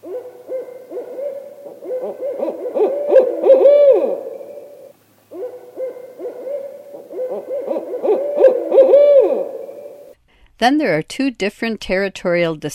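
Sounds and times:
Barred Owl hooting played back from a CD recording: 0:00.0 - 0:10.2
speech: 0:10.6 - 0:12.7.

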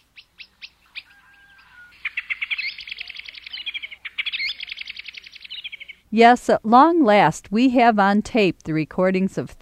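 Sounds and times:
blackbird singing: 0:00.0 - 0:06.0
speech: 0:06.1 - 0:09.6.

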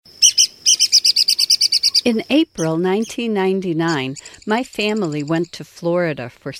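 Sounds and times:
Red-cockaded Woodpecker calling: 0:00.1 - 0:05.6
speech: 0:02.0 - 0:06.5.

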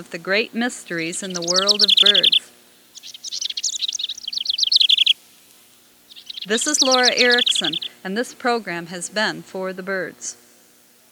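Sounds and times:
speech: 0:00.0 - 0:02.6, 0:06.4 - 0:10.4
House Wren song: 0:00.0 - 0:08.6.

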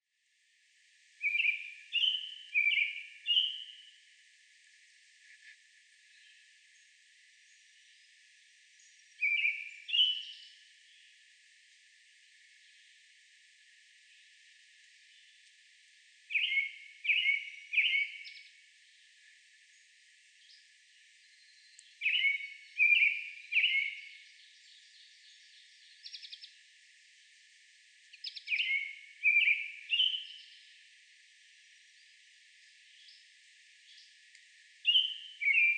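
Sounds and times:
American robin: 0:01.2 - 0:03.9, 0:09.2 - 0:10.5, 0:16.3 - 0:18.4, 0:21.5 - 0:24.8, 0:28.2 - 0:30.5, 0:34.8 - 0:35.7.

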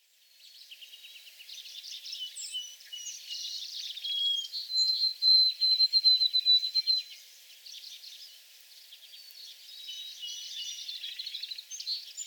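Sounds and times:
White-throated sparrow whistled song in back shrubs: 0:00.8 - 0:08.4, 0:09.1 - 0:12.2.

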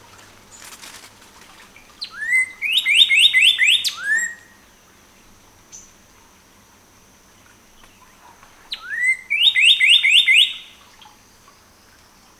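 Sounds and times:
Northern cardinal song of downslurred and sharp whistled notes: 0:02.0 - 0:04.5, 0:08.7 - 0:10.8.

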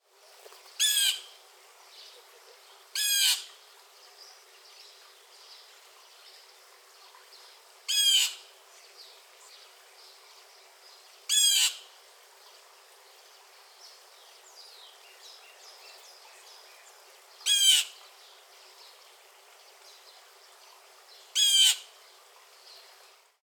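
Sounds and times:
Blue Jay: 0:00.5 - 0:01.3, 0:03.0 - 0:03.5, 0:07.9 - 0:08.4, 0:11.3 - 0:11.8, 0:17.4 - 0:18.0, 0:21.4 - 0:21.9.

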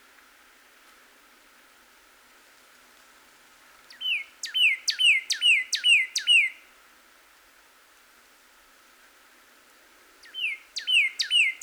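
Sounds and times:
cardinal whistled song: 0:04.0 - 0:06.6, 0:10.3 - 0:11.6.

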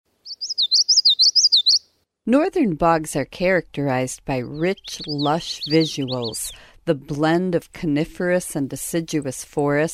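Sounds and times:
Common Yellowthroat singing rolling up-and-down notes: 0:00.2 - 0:01.9, 0:04.4 - 0:06.7
speech: 0:02.3 - 0:09.9.

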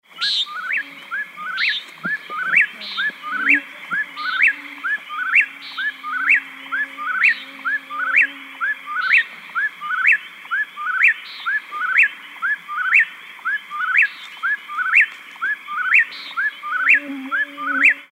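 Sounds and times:
mosquito buzzing: 0:00.2 - 0:09.6, 0:16.0 - 0:18.1
Common Nighthawk calling: 0:00.2 - 0:18.1.

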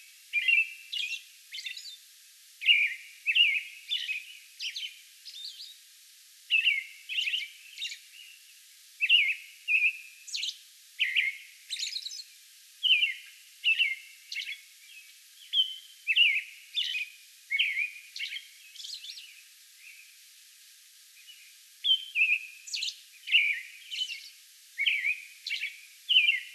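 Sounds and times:
American robin caroling whistled phrases: 0:00.3 - 0:02.0, 0:02.6 - 0:05.8, 0:06.5 - 0:08.4, 0:09.0 - 0:20.0, 0:21.2 - 0:26.5.

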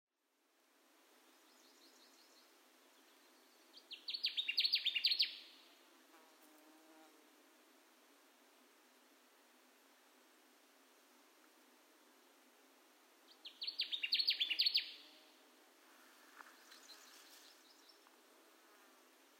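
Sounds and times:
Connecticut warbler singing bursts of rapid emphatic notes: 0:01.4 - 0:05.5, 0:13.4 - 0:15.0.

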